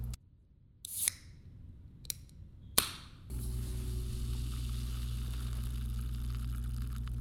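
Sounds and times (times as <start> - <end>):
soda fizzing: 3.6 - 7.2.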